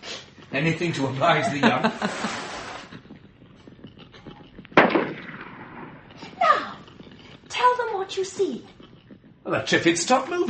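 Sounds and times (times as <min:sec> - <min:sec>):
speech: 0:00.5 - 0:02.5, 0:08.2 - 0:08.8, 0:09.5 - 0:10.4
laughter: 0:01.1 - 0:02.9
revolver fired into the air out of a window: 0:04.8 - 0:06.0.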